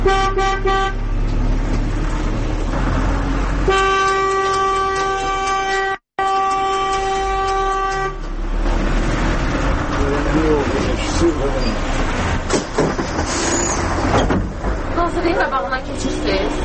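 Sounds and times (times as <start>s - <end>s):
car horns honking in traffic: 0.0s - 1.1s, 3.6s - 8.4s
low rumble of road noise: 0.0s - 16.6s.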